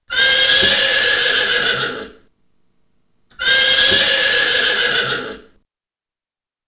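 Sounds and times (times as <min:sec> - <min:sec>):
horse neighing: 0:00.1 - 0:02.2, 0:03.3 - 0:05.6.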